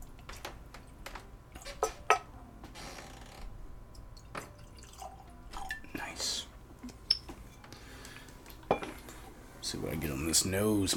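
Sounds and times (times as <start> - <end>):
scattered drips: 3.9 - 6.0
whiskey trickling into a glass: 4.0 - 5.9
speech: 9.7 - 10.9.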